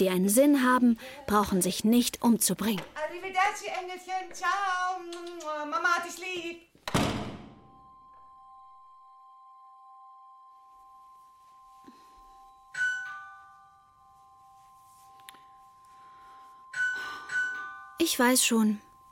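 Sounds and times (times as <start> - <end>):
speech: 0.0 - 7.3, 18.0 - 18.9
apartment doorbell chiming faintly: 7.6 - 19.1.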